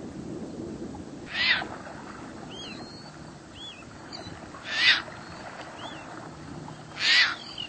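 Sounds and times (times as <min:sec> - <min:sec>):
Caspian tern giving loud harsh rasping calls: 0:01.3 - 0:01.6, 0:04.7 - 0:05.0, 0:07.0 - 0:07.6.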